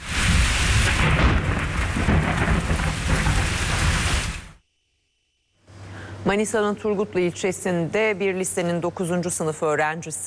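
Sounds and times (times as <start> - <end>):
deep rolling thunder at night over a capital city: 0.0 - 4.6
heavy rain pouring at night over a capital city: 0.0 - 4.6
speech: 6.3 - 10.2.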